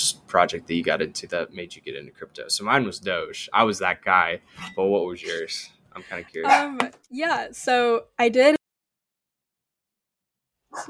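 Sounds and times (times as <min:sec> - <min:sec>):
speech: 0:00.1 - 0:08.6
agitated pet dog barking: 0:06.5 - 0:06.7.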